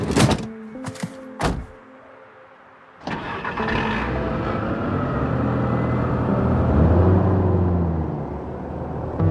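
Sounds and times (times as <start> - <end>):
door thuds: 0.2 - 1.8
engine starting up and running: 3.0 - 9.2.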